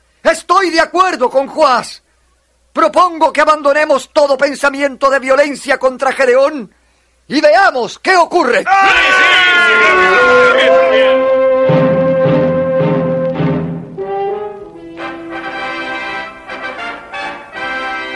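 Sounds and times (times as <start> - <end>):
speech: 0.6 - 2.0, 2.8 - 11.2
trumpets blaring: 8.9 - 18.1.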